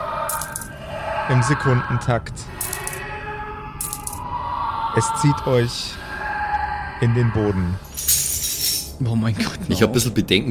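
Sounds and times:
low hum: 0.0 - 10.4
metallic coins clinking and jingling against each other: 0.3 - 0.7, 2.6 - 3.0, 3.8 - 4.2, 7.9 - 9.0
speech: 1.3 - 2.7, 5.0 - 6.0, 7.0 - 8.2, 9.0 - 10.4.

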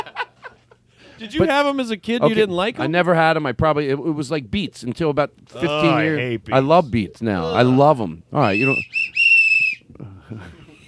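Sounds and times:
speech: 1.2 - 9.0, 10.0 - 10.6
loud shrill whistle blast: 8.4 - 9.9.

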